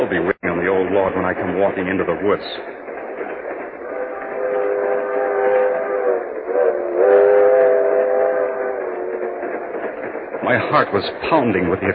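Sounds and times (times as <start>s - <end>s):
speech: 0.1s - 3.3s, 10.5s - 11.9s
train horn with chord-like tone: 3.8s - 9.4s.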